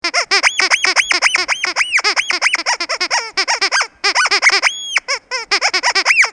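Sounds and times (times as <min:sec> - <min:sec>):
squeaky toy pig: 0:00.0 - 0:06.3.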